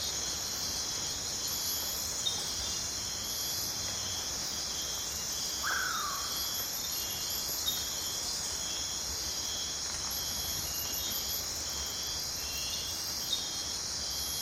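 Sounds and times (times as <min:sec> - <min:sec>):
insect chorus in the Amazon rainforest at night: 0:00.0 - 0:14.4.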